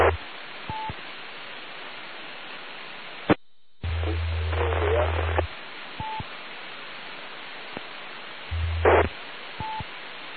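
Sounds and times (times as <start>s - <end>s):
radio static hissing: 0.0s - 1.1s, 2.2s - 10.3s
low humming bursts: 3.7s - 5.4s, 8.5s - 9.1s.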